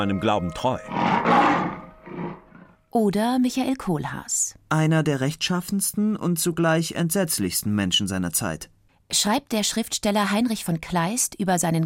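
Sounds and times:
speech: 0.0 - 11.8
lion roaring: 0.7 - 2.8.

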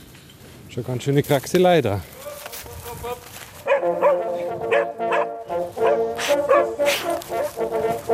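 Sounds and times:
speech: 0.7 - 2.1
hunting dog barking and yelping during a driven hunt in woodland: 3.7 - 7.2.

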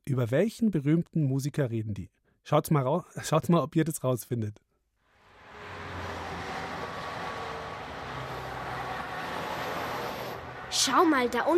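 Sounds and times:
speech: 0.1 - 4.6, 10.8 - 11.5
busy city street traffic roar: 5.1 - 11.5.

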